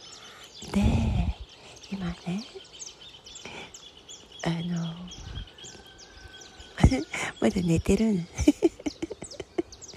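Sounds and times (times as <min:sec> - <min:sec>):
wild birds chirping in a mountain setting surrounded by trees: 0:00.0 - 0:09.9
speech: 0:00.6 - 0:01.1, 0:01.9 - 0:02.7, 0:04.4 - 0:05.2, 0:06.9 - 0:08.6
laughter: 0:08.3 - 0:09.9.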